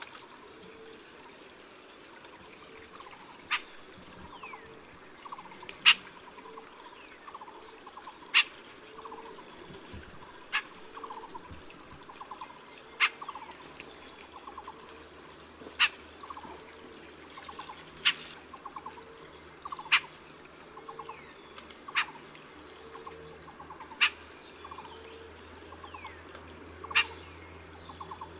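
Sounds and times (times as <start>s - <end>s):
Siberian rubythroat singing: 2.9s - 15.0s, 18.6s - 28.3s.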